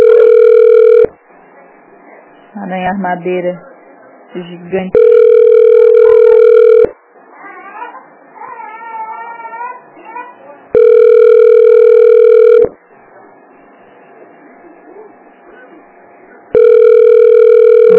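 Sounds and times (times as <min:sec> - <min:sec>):
telephone ringing in long electronic bursts: 0:00.0 - 0:01.1, 0:04.9 - 0:07.0, 0:10.7 - 0:12.8, 0:16.5 - 0:17.9
faint chattering voices: 0:00.0 - 0:17.9
speech: 0:02.9 - 0:03.7, 0:04.3 - 0:05.1.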